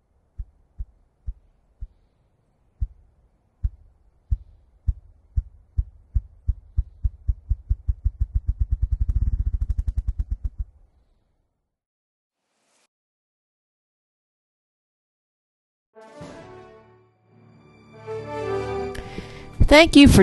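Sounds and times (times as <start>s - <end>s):
bird wing-drumming thuds: 0.3s - 2.1s, 2.8s - 3.0s, 3.6s - 10.8s
speech: 19.7s - 20.2s.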